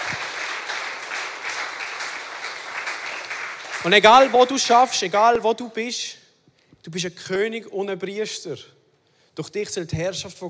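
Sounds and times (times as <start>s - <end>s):
audience applause: 0.0s - 4.6s
speech: 3.8s - 6.2s, 6.8s - 8.8s, 9.4s - 10.4s.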